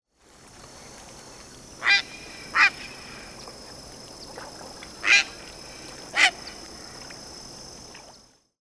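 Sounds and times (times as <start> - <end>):
grand heron: 1.7 - 3.6, 4.9 - 7.2.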